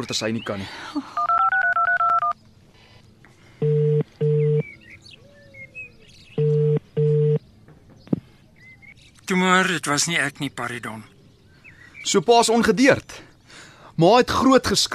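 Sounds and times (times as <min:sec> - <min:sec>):
speech: 0:00.0 - 0:01.3, 0:09.3 - 0:11.1, 0:12.0 - 0:13.3, 0:14.0 - 0:14.9
telephone keypad tones dialing: 0:01.2 - 0:02.4, 0:03.6 - 0:04.6, 0:06.4 - 0:07.4.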